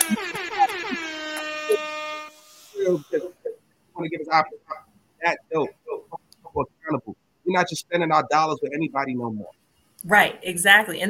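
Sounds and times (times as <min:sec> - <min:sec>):
air horn sound effect blast: 0:00.0 - 0:03.2
speech: 0:02.9 - 0:03.1, 0:04.3 - 0:05.8, 0:07.5 - 0:11.0.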